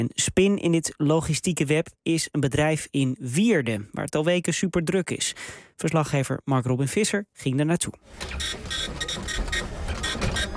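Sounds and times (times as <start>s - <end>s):
speech: 0.0s - 8.8s
printer printing waybills at a logistics company: 8.1s - 10.5s.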